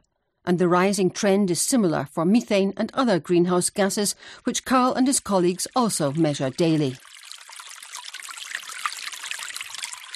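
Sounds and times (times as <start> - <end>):
speech: 0.5 - 7.1
meltwater from melting snow trickling and babbling: 5.5 - 10.1.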